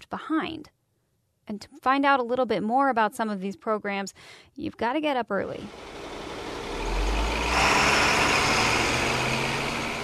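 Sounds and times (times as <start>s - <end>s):
speech: 0.1s - 0.8s, 1.5s - 6.0s
heavy truck engine rumbling and revving as it pulls away: 5.7s - 10.0s.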